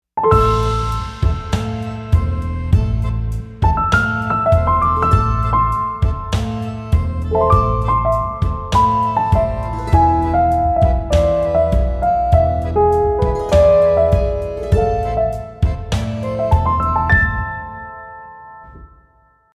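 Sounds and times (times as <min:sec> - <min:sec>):
retro electronic tango music: 0:00.3 - 0:19.2.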